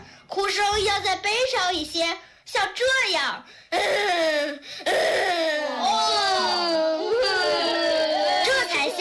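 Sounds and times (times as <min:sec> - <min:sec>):
speech: 0:00.4 - 0:06.2
person sobbing and wailing: 0:03.7 - 0:08.9.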